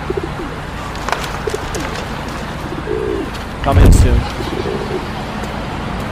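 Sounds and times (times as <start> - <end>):
pigeons cooing: 0.0 - 3.4, 4.2 - 5.2
wings fluttering: 0.8 - 3.6
speech: 3.6 - 5.1.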